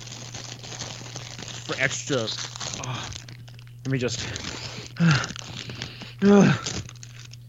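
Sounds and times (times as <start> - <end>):
faint low hum: 0.0 - 7.4
seasoning-coated potato chips crunching: 0.0 - 7.4
speech: 1.7 - 3.2, 3.8 - 5.4, 6.2 - 6.8.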